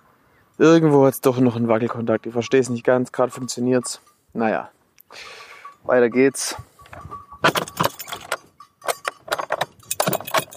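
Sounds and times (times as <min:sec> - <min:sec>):
faint steady tone: 0:00.0 - 0:10.5
speech: 0:00.6 - 0:07.7
keys jangling while padlocking a hut: 0:06.8 - 0:10.5
padlock being fastened on a hut: 0:07.4 - 0:10.5.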